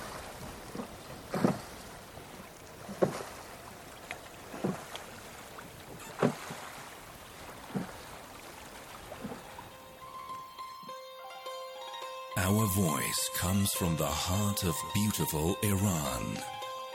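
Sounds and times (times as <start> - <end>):
oars rowing a boat through water: 0.0 - 10.4
sustained tones: 12.4 - 16.6
speech: 12.6 - 16.6.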